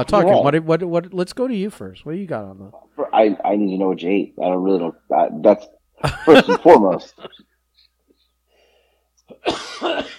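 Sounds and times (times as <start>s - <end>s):
speech: 0.0s - 7.5s, 9.4s - 10.1s
laughter: 6.0s - 7.4s
person coughing: 9.3s - 10.1s.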